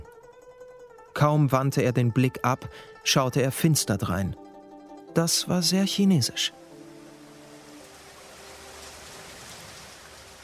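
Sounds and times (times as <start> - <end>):
speech: 1.2 - 4.4, 5.2 - 6.7
steady dense heavy rain falling: 6.8 - 10.4.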